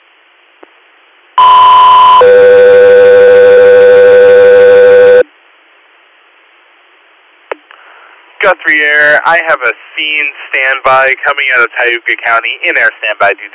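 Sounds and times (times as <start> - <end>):
two-stage radio dispatch electronic alert tone: 1.4 - 5.2
speech: 8.6 - 13.5.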